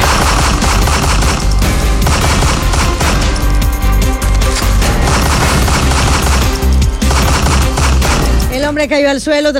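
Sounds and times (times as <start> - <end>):
rapid gunfire from a gunman: 0.0 - 3.5, 4.7 - 8.6
speech: 8.8 - 9.5.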